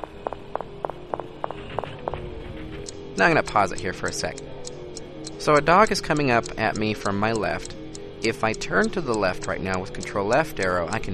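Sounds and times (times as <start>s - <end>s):
video game character footsteps walking forward into a room: 0.0s - 2.9s
low hum: 0.0s - 11.1s
speech: 3.2s - 4.5s, 5.4s - 11.1s.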